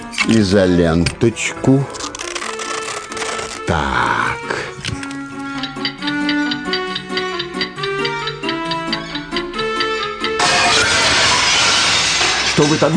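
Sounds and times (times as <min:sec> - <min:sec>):
speech: 0:00.2 - 0:02.2, 0:03.7 - 0:05.0, 0:12.6 - 0:12.9
steady ticking: 0:05.1 - 0:10.4
glass dropped and shattering: 0:10.4 - 0:12.9.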